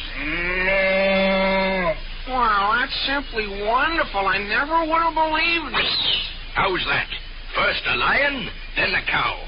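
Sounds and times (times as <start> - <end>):
cow mooing: 0.1 - 2.1
speech: 3.1 - 9.4.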